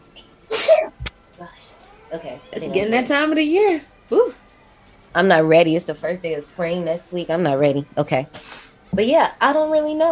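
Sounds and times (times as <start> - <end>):
loud sneeze: 0.5 - 1.0
speech: 1.4 - 4.4, 5.1 - 10.1
low sniff: 8.4 - 8.8.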